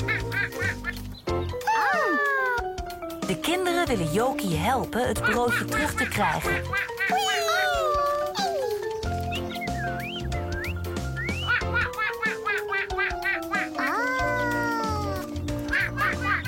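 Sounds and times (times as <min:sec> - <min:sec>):
ducks quacking in a park: 0:00.0 - 0:01.2, 0:05.1 - 0:07.6, 0:11.3 - 0:14.2, 0:15.5 - 0:16.4
bouncy music track: 0:00.0 - 0:16.4
speech: 0:03.3 - 0:07.3
laughter: 0:05.2 - 0:08.7, 0:11.2 - 0:15.1, 0:15.7 - 0:16.4
sweeping whistle-like tones: 0:09.3 - 0:11.5.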